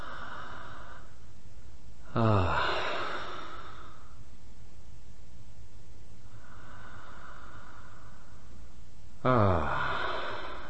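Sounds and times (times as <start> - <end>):
deep airy breath drawn with the chest: 0.0 - 1.3, 2.0 - 4.3, 6.2 - 10.6
speech: 2.1 - 2.6, 9.2 - 9.7.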